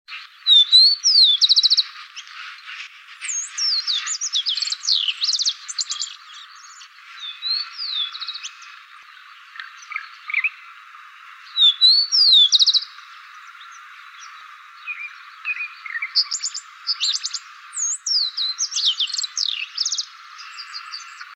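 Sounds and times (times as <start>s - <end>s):
rufous-collared sparrow and shiny cowbird calling: 0.1s - 21.3s.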